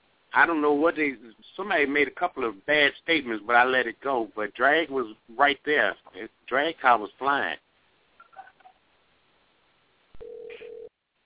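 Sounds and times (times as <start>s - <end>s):
speech: 0.4s - 7.6s
telephone ringback on an outgoing call through a phone line: 10.2s - 10.9s.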